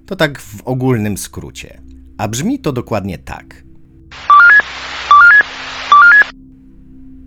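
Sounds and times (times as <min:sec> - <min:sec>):
speech: 0:00.1 - 0:03.6
radio static hiss: 0:04.2 - 0:06.3
railway radio emergency stop alarm rising electronic beeps: 0:04.2 - 0:06.3.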